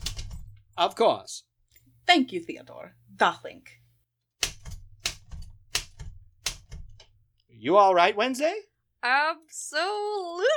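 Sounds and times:
sticky typewriter keys being struck: 0.0s - 0.8s, 4.4s - 7.2s
speech: 0.8s - 1.5s, 2.1s - 3.8s, 7.6s - 10.5s.

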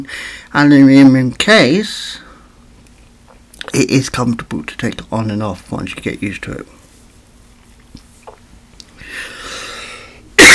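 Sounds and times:
breathing: 0.0s - 0.5s, 2.2s - 2.6s, 9.0s - 10.3s
speech: 0.0s - 2.2s, 3.7s - 6.8s.

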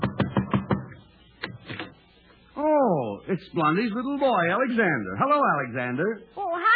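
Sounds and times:
knocking on a door: 0.0s - 1.0s
speech: 3.3s - 6.7s.

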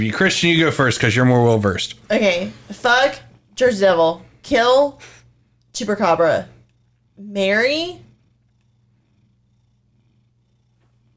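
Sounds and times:
speech: 0.0s - 5.2s, 5.8s - 6.5s, 7.2s - 8.0s
cat purring: 0.0s - 11.1s.

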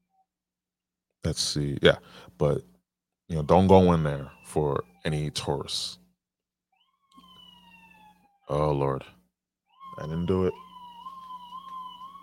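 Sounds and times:
speech: 1.2s - 2.7s, 3.3s - 6.0s, 8.5s - 9.2s, 10.0s - 10.6s
ambulance siren wailing outside: 3.3s - 6.0s, 6.8s - 12.2s.

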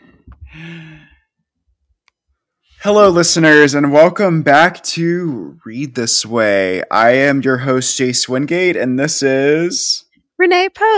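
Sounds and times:
deep breath with a long voiced sigh-like exhale: 0.0s - 1.4s
speech: 0.6s - 1.1s, 2.8s - 10.9s.

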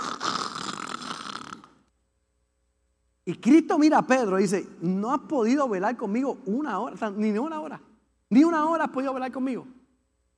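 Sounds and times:
person imitating snoring: 0.0s - 1.8s
speech: 3.3s - 9.8s.

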